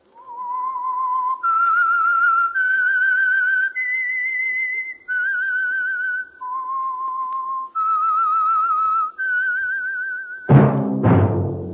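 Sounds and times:
whistled theme melody: 0.2s - 11.0s
sharp bright orchestral stabs: 10.5s - 11.7s.

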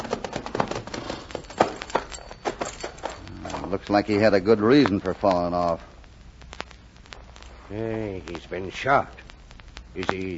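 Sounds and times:
saddled horse hooves clip-clopping by a clump of mesquite: 0.0s - 3.9s
speech: 3.7s - 5.9s, 7.7s - 9.2s, 10.0s - 10.3s.

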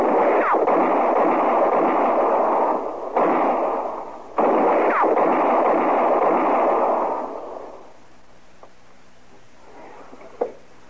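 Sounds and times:
gunshots in a Western shootout near trees: 0.0s - 8.0s.

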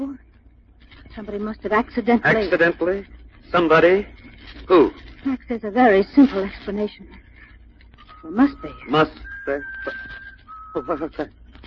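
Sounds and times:
speech: 1.2s - 7.2s, 8.2s - 10.2s, 10.8s - 11.6s
eerie bird-like whistling: 8.1s - 11.3s.

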